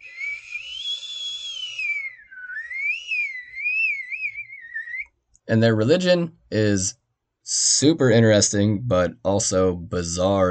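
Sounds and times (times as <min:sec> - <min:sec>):
two-chambered water jar whistling with breathy tone: 0:00.0 - 0:05.1
speech: 0:05.5 - 0:10.4.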